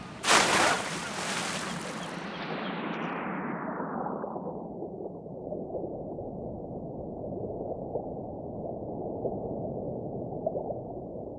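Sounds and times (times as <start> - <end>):
splash of someone diving into warm water: 0.2 - 2.3
steady low underwater rumble: 2.0 - 11.3.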